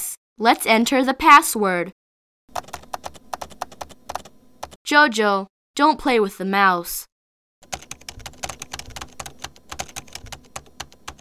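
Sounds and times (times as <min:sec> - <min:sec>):
speech: 0:00.4 - 0:02.0, 0:04.9 - 0:07.1
typing on a computer keyboard: 0:02.5 - 0:04.8, 0:07.6 - 0:11.1.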